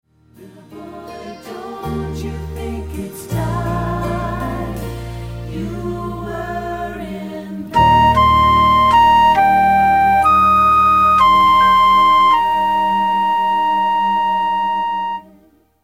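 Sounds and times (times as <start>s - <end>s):
person singing: 0.4s - 5.0s, 5.6s - 15.4s
flute melody: 7.7s - 15.6s.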